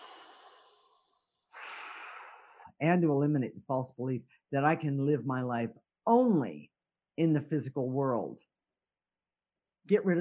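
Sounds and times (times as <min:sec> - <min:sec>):
person taking a deep breath: 0:01.5 - 0:02.7
speech: 0:02.8 - 0:08.5, 0:09.8 - 0:10.1.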